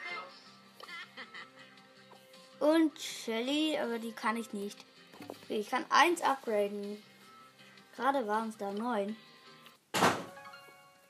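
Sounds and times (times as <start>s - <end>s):
laughter: 0.8s - 1.8s
speech: 2.6s - 7.1s, 8.0s - 9.3s
single heavy door thudding shut: 10.0s - 10.3s.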